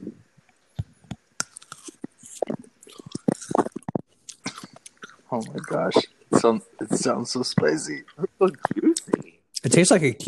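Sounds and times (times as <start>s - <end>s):
biting and chewing a small tomatillo: 1.4s - 6.0s
speech: 5.3s - 10.2s.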